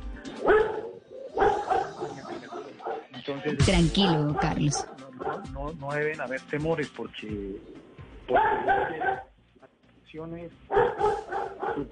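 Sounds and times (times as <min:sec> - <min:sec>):
dogs barking: 0:00.3 - 0:03.2, 0:03.9 - 0:05.6, 0:08.2 - 0:09.4, 0:10.7 - 0:11.8
speech: 0:03.3 - 0:05.0, 0:05.7 - 0:09.3, 0:10.1 - 0:11.8.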